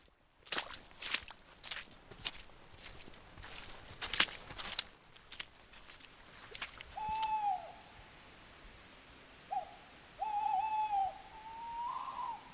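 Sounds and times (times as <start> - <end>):
crunching footsteps: 0.0 - 7.4
tawny owls calling on a woodland slope across a gill: 7.0 - 7.9, 9.5 - 12.5.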